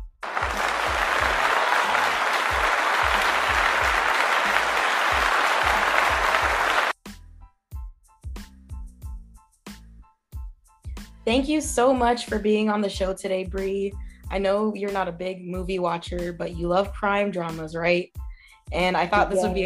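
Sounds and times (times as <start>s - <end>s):
loud dense applause: 0.0s - 7.0s
speech: 11.3s - 19.6s.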